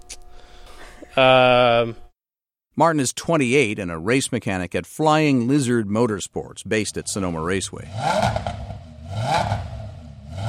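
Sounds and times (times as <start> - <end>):
speech: 1.2 - 2.0, 2.8 - 8.6
10-cylinder Audi race car engine revving in a workshop: 7.1 - 10.4.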